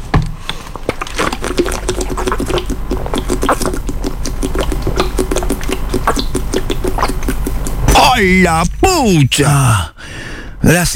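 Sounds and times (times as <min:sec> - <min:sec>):
person drinking water from a bottle: 0:00.0 - 0:08.0
speech: 0:08.2 - 0:09.9, 0:10.6 - 0:10.9.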